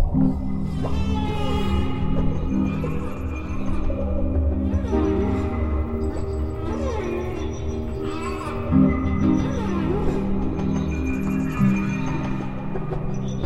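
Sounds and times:
whale calls moaning and sweeping through the water: 0.1s - 13.3s.

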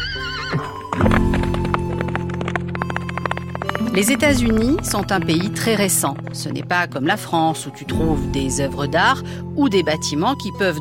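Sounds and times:
horse neighing: 0.0s - 0.9s
horse hooves clip-clopping: 0.5s - 9.0s
speech: 4.0s - 10.7s.

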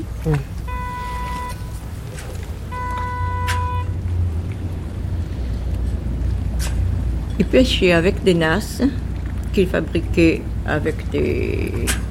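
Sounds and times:
droning engine-like hum: 0.0s - 12.0s
outdoor wind buffeting the microphone near the water: 0.0s - 12.0s
speech: 0.2s - 0.6s, 7.5s - 9.0s, 9.6s - 12.0s
thin tonal whines: 0.6s - 4.1s.

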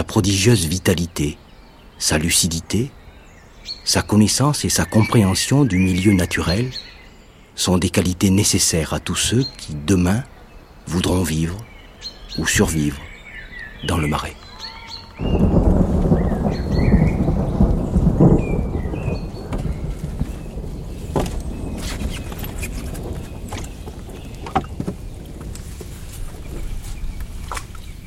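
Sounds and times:
speech: 0.0s - 1.4s, 2.0s - 3.0s, 3.6s - 7.0s, 7.6s - 10.3s, 10.9s - 11.7s, 12.4s - 13.1s, 13.8s - 14.4s, 15.2s - 15.5s
steady patter of rain: 0.0s - 11.8s, 13.8s - 28.0s
deep rumble of thunder: 15.2s - 28.0s
sharp drips and taps: 22.3s - 25.9s.

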